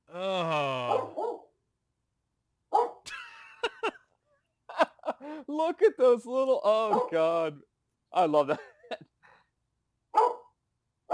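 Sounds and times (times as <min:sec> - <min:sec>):
studio dog barking: 0:00.9 - 0:01.5, 0:02.7 - 0:03.0, 0:06.9 - 0:07.2, 0:10.1 - 0:11.1
laughter: 0:03.1 - 0:04.1, 0:04.7 - 0:05.3
speech: 0:05.4 - 0:09.0.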